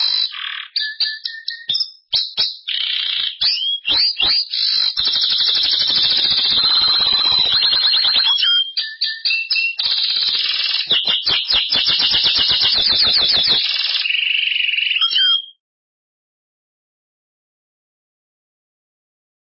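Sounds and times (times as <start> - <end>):
Belgian canary delivering loud rapid trills and rattling runs: 0.0 - 15.6.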